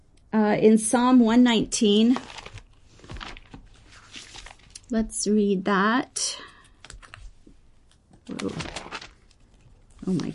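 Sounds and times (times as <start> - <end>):
speech: 0.4 - 2.4, 4.9 - 6.5, 8.3 - 8.8, 10.0 - 10.3
scripture book pages turning: 2.0 - 4.9, 6.5 - 10.3.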